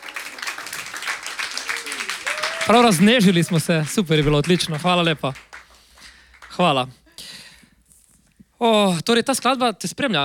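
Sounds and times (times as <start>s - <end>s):
audience applause after a musical performance: 0.0s - 6.9s
speech: 2.7s - 5.5s, 6.6s - 7.0s, 8.6s - 10.2s.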